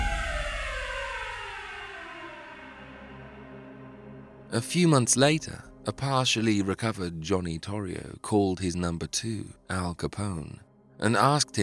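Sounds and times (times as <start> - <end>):
police car sirens wailing: 0.0 - 3.5
dense rumble: 0.0 - 4.4
speech: 4.5 - 11.6.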